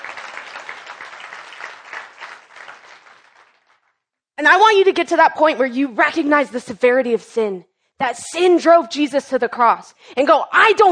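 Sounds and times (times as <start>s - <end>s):
audience applauding: 0.0s - 3.9s
speech: 4.4s - 10.8s.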